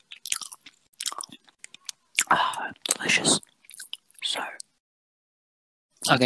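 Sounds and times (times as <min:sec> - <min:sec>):
wet chewing of braised beef with rice for ASMR: 0:00.0 - 0:04.3
speech: 0:06.1 - 0:06.2.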